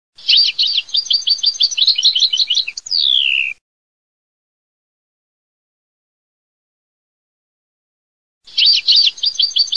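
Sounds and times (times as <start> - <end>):
goldfinch singing: 0.2 - 3.6, 8.5 - 9.7.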